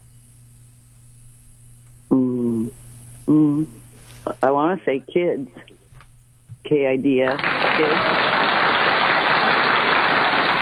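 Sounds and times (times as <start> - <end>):
speech: 3.3 - 5.7, 6.7 - 8.4
crowd applauding: 7.4 - 10.6.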